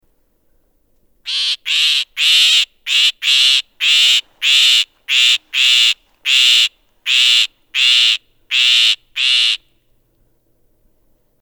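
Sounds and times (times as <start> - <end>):
Northern Shrike Lanius borealis invictus calling: 1.3 - 9.8.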